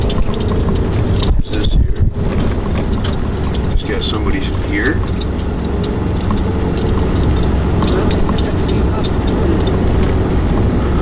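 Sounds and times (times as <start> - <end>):
faint clicks and rattles: 0.0 - 10.8
heavy truck rumbling on the road with engine and tire drone: 0.0 - 11.0.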